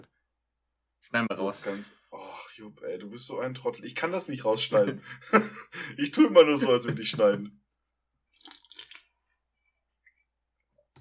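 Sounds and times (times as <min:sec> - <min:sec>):
speech: 0:01.1 - 0:07.6
laughter: 0:04.7 - 0:07.5
water trickling and splashing: 0:08.3 - 0:09.1
soft scattered water drips: 0:08.3 - 0:09.3.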